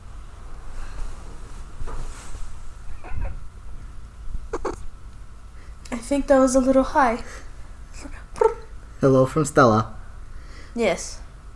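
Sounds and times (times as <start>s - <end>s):
steady low hum: 0.0s - 11.5s
kitten meowing: 4.5s - 4.8s
speech: 5.9s - 7.4s, 9.0s - 10.0s, 10.8s - 11.5s.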